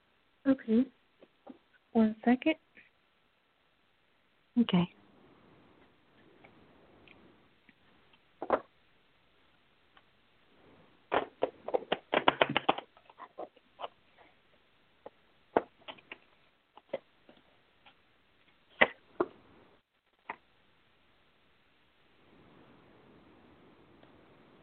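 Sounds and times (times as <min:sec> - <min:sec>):
speech: 0:00.4 - 0:01.0, 0:02.0 - 0:02.6, 0:04.6 - 0:05.0
tarot cards being shuffled: 0:11.1 - 0:14.0.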